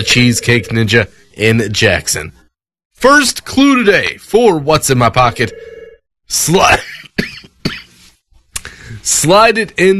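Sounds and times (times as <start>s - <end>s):
speech: 0.0s - 2.4s, 3.0s - 5.7s, 6.3s - 7.3s, 9.0s - 9.9s
harsh throaty cough: 6.7s - 8.0s.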